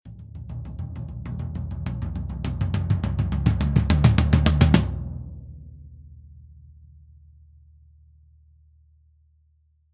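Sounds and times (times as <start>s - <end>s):
tom drum roll through a fake SM58 microphone: 0.1s - 5.6s.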